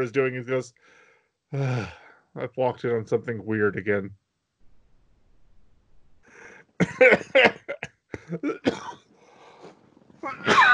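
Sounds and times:
speech: 0:00.0 - 0:04.2, 0:06.8 - 0:09.0
person sneezing: 0:10.2 - 0:10.7.

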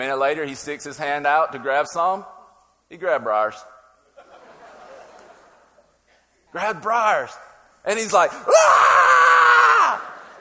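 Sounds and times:
speech: 0:00.0 - 0:03.7, 0:06.5 - 0:09.0
laughter: 0:04.2 - 0:05.9, 0:10.0 - 0:10.3
person imitating a boy's pained scream: 0:08.5 - 0:10.2.

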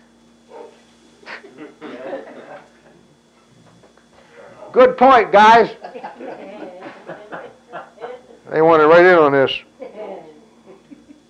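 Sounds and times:
low hum: 0:00.0 - 0:11.2
dog barking muffled from downstairs: 0:00.5 - 0:00.9
soft laughter: 0:01.2 - 0:02.9, 0:05.8 - 0:08.4, 0:09.8 - 0:11.2
speech: 0:04.7 - 0:05.8, 0:08.5 - 0:09.7.

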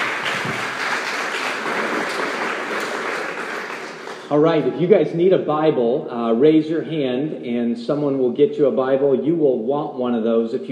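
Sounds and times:
large audience applause: 0:00.0 - 0:04.7
speech: 0:04.3 - 0:10.6.

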